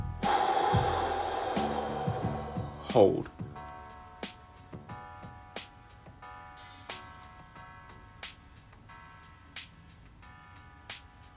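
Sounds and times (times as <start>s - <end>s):
long exhale through the mouth during a breathing meditation: 0.2s - 3.4s
speech: 2.9s - 3.4s.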